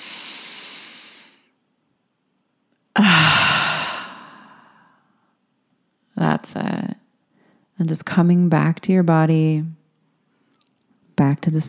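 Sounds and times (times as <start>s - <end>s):
deep breath in through the nose and out through the mouth: 0.0s - 1.5s, 3.0s - 5.3s
speech: 6.4s - 7.0s, 7.8s - 9.8s, 11.2s - 11.6s.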